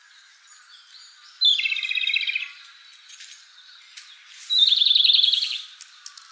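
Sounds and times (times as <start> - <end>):
Japanese robin singing trilled phrases: 0.5 - 2.6, 3.6 - 5.7
faint clicks: 5.8 - 6.3.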